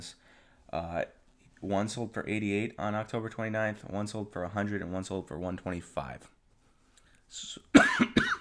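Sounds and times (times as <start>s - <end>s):
speech: 0.0s - 6.4s, 7.3s - 8.2s
person with a lingering cough coughing: 7.8s - 8.3s.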